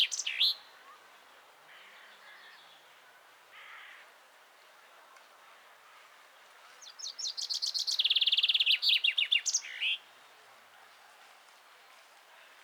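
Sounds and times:
common chaffinch Fringilla coelebs call and song: 0:00.0 - 0:00.7, 0:06.8 - 0:10.0.

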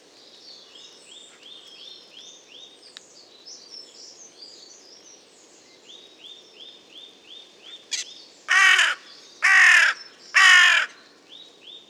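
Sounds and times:
carrion crow Corvus corone rasping caws: 0:08.5 - 0:11.1.

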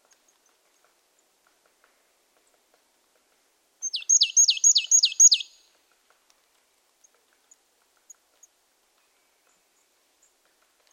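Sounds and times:
marsh tit Poecile palustris calling: 0:03.8 - 0:05.6.

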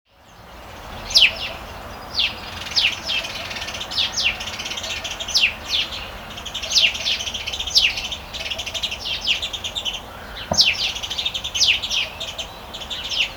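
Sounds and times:
house sparrow chirping: 0:00.1 - 0:13.3
knock: 0:10.5 - 0:10.7.

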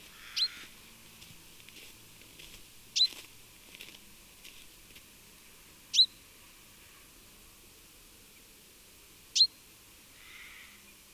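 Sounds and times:
common chaffinch Fringilla coelebs call: 0:00.0 - 0:00.7, 0:05.9 - 0:06.2, 0:09.4 - 0:10.9.

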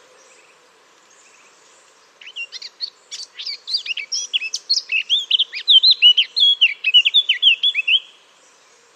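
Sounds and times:
Eurasian blackcap Sylvia atricapilla singing: 0:02.2 - 0:08.1.

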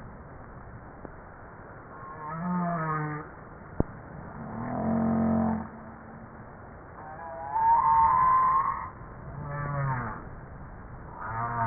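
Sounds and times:
humpback whale calls, high wavering tone and harmonic moan: 0:01.9 - 0:03.3, 0:04.2 - 0:06.4, 0:07.0 - 0:10.3, 0:11.1 - 0:11.6.

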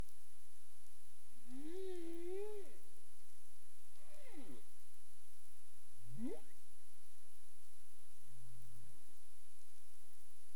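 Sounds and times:
humpback whale calling: 0:01.5 - 0:02.8, 0:06.2 - 0:06.5.

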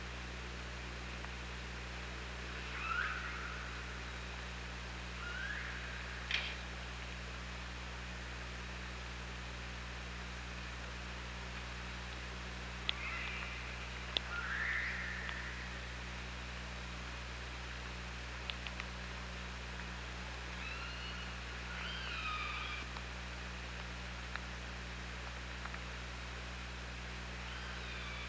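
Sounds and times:
low hum and hiss: 0:00.0 - 0:28.2
killer whale tonal calls on hydrophone recording: 0:02.7 - 0:03.6, 0:20.6 - 0:22.9, 0:27.4 - 0:28.2.

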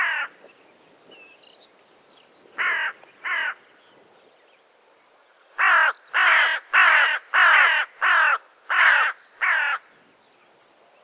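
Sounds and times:
carrion crow Corvus corone cawing: 0:00.0 - 0:00.4, 0:02.6 - 0:03.6, 0:05.6 - 0:09.9.

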